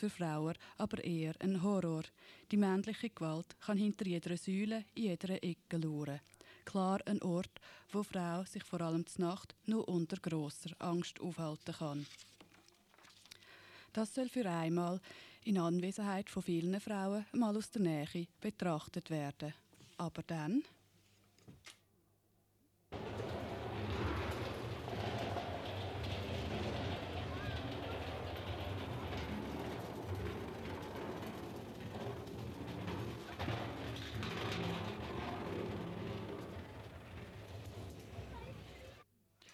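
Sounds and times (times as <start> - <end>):
speech: 0.0 - 12.4, 13.9 - 20.8
train rolling into a station with rumble and clatter: 23.0 - 39.0.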